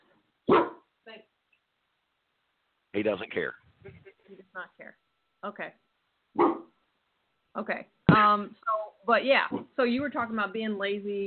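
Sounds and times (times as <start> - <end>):
guard dog barking at someone outside: 0.5 - 0.8, 6.4 - 6.7
speech: 3.0 - 6.6, 7.6 - 11.2.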